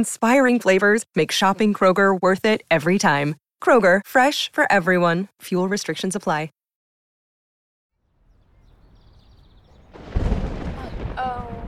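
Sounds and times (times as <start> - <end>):
speech: 0.0 - 6.6
faint high chirping: 8.2 - 11.2
thunder rolling from a lightning storm: 8.2 - 11.6.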